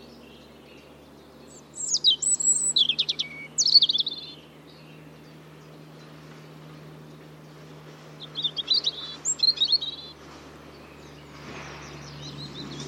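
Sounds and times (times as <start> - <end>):
European robin singing thin high warbling phrases: 0.0 - 12.8
constant low hum: 0.0 - 12.8.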